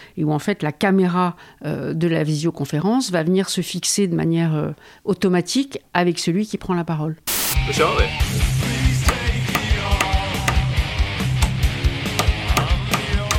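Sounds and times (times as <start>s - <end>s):
speech: 0.2s - 8.7s
microphone pounding a nail during a durability test: 9.0s - 10.8s, 11.4s - 13.3s.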